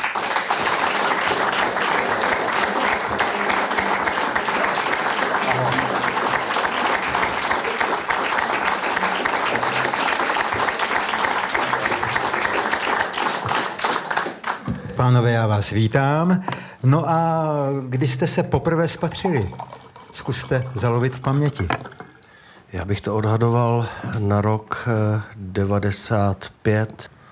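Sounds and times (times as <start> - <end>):
talk-show audience applauding as guests are welcomed: 0.0 - 14.7
speech: 15.1 - 21.9, 22.8 - 27.2.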